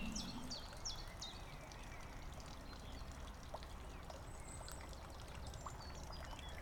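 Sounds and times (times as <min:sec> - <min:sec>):
high bird chirps: 0:00.0 - 0:00.8
trickling water at the edge of a lily pond: 0:00.0 - 0:06.6.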